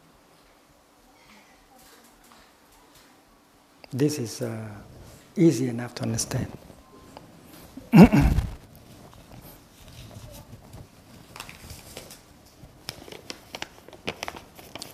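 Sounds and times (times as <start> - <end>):
speech: 3.9 - 6.6, 8.0 - 8.4
sheet of paper being handled, rustling and crinkling: 8.6 - 14.9.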